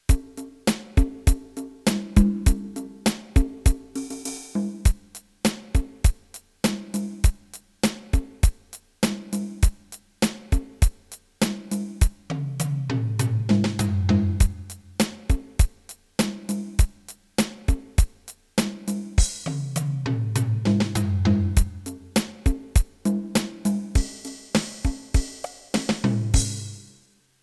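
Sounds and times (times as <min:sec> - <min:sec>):
Startone MK-200 pop beat: 0:00.0 - 0:27.0.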